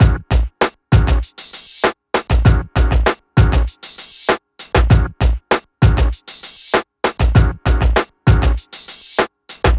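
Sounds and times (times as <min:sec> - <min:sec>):
hip hop drums: 0:00.0 - 0:09.7.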